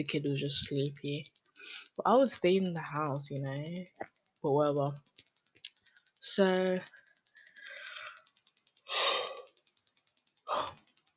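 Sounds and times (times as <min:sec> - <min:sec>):
speech: 0:00.0 - 0:05.1, 0:06.2 - 0:07.0
faint rapid regular pulsing noise: 0:00.0 - 0:11.1
person yawning: 0:08.9 - 0:09.5.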